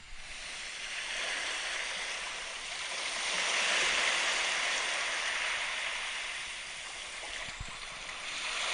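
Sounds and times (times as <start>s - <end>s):
ocean waves soundscape from a sleep app played on a phone: 0.0s - 8.7s.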